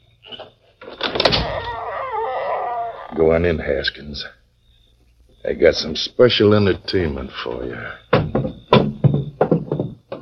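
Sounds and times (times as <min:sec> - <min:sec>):
door opening with scrape, clunk and grinding creak: 0:00.2 - 0:03.4, 0:07.4 - 0:10.2
speech: 0:03.2 - 0:04.4, 0:05.5 - 0:08.6.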